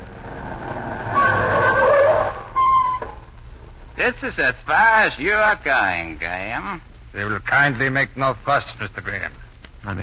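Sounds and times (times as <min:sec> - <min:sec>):
car tires squealing as a vehicle brakes hard: 0:00.0 - 0:03.3
rumbling car engine: 0:00.0 - 0:03.9
speech: 0:04.0 - 0:10.0.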